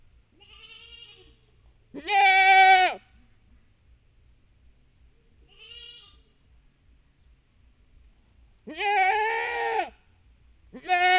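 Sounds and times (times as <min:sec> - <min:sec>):
domestic goat kid bleating for its mother in a farmyard: 0:00.4 - 0:03.0, 0:05.4 - 0:06.4, 0:08.7 - 0:09.9, 0:10.8 - 0:11.1.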